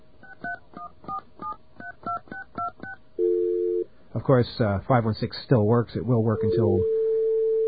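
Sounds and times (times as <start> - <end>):
steady tone on the phone line: 3.2 - 3.9, 6.4 - 7.6
speech: 4.3 - 7.0.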